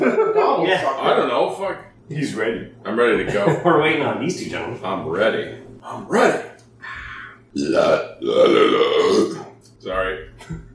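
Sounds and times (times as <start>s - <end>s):
speech: 0.0s - 6.5s, 7.6s - 10.6s
person burping: 7.5s - 9.6s.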